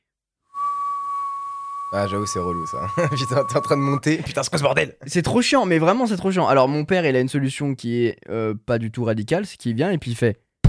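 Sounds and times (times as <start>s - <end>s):
person whistling a high note imitating a household appliance whistle: 0.5s - 4.1s
speech: 1.9s - 10.4s
laughter: 2.8s - 4.6s.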